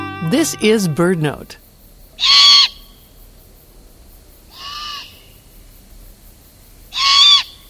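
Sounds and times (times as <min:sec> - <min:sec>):
speech: 0:00.4 - 0:01.6, 0:02.2 - 0:02.4
young Great Horned Owl begging screeches in spring: 0:02.2 - 0:02.9, 0:04.5 - 0:05.2, 0:06.9 - 0:07.6.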